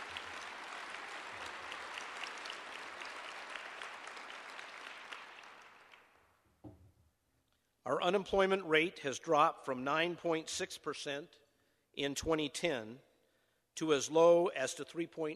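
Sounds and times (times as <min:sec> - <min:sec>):
crowd clapping: 0:00.0 - 0:06.3
thump: 0:06.6 - 0:07.0
speech: 0:07.9 - 0:11.4, 0:12.0 - 0:13.1, 0:13.8 - 0:15.3.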